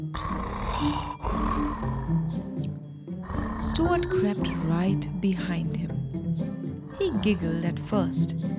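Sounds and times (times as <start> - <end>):
speech: 0.2 - 1.1, 3.6 - 5.9, 7.0 - 8.5
person's voice imitating heavy snoring: 0.2 - 2.7, 3.3 - 5.7, 6.9 - 8.3.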